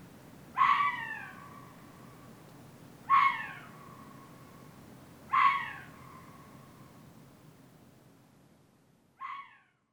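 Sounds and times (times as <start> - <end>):
Hokkaido red fox calling in Muroran: 0.6 - 1.4, 3.1 - 3.8, 5.3 - 5.9, 9.2 - 9.6.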